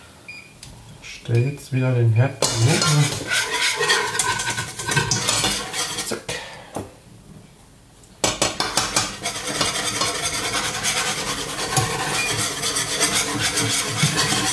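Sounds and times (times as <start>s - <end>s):
speech: 1.2s - 3.5s
spoon stirring flour into a sauce and scraping against the pot: 2.4s - 6.3s, 8.2s - 14.5s.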